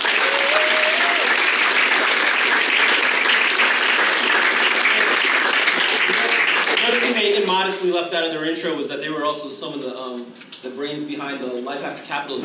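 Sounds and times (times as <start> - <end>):
audience applause: 0.0 - 7.6
whistle or cheer: 0.2 - 1.3
speech: 7.6 - 12.4.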